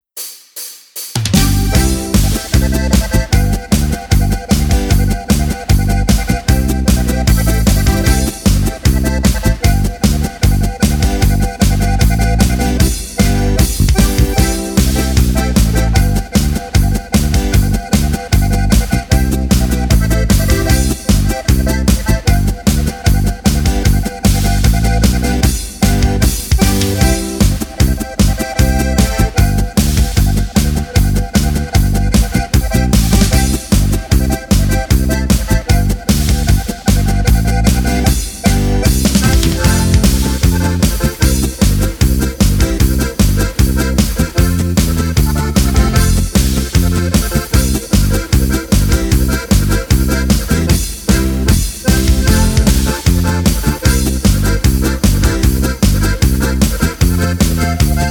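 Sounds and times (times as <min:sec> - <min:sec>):
polka in G C F B with harmonica accompaniment: 0:01.3 - 0:58.0.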